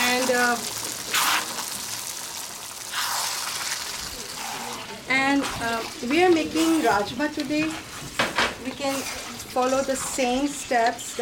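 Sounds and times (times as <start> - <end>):
water pouring into a cooking pot for soaked beans: 0.0 - 5.1
speech: 0.4 - 0.8, 5.4 - 7.9, 8.7 - 11.2.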